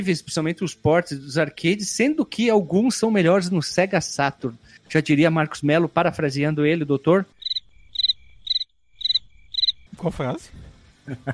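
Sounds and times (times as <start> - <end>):
speech: 0.0 - 7.4, 10.0 - 11.3
cricket chirping: 7.3 - 10.0.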